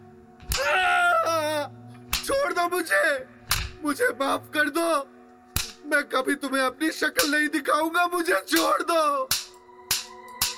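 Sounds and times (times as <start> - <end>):
man screaming in anguish: 0.5 - 1.7
speech: 2.6 - 5.2, 5.8 - 9.4
belt strike slap: 9.3 - 10.5.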